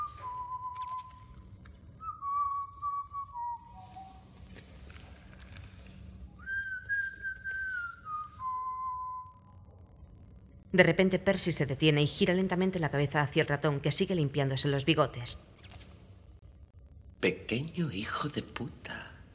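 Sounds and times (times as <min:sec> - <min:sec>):
man whistling a slow tune while combing his hair: 0:00.0 - 0:01.3, 0:02.0 - 0:04.5, 0:06.4 - 0:09.5
speech: 0:10.8 - 0:15.6, 0:17.2 - 0:19.3.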